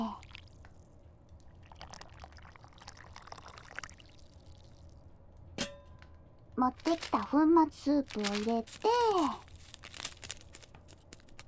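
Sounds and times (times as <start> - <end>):
hot water pouring into a cup: 1.4 - 5.1
cup clink: 5.6 - 6.2
speech: 6.6 - 9.4.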